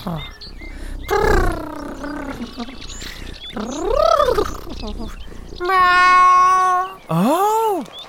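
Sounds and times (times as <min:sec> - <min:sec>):
speech: 0:00.0 - 0:01.4, 0:02.4 - 0:08.0
voice imitating a cat purring loudly: 0:00.0 - 0:07.7.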